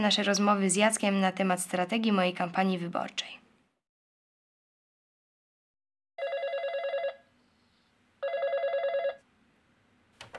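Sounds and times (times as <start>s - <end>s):
speech: 0.0s - 3.4s
telephone bell ringing with a bright rapid metallic trill: 6.2s - 7.3s, 8.2s - 9.2s.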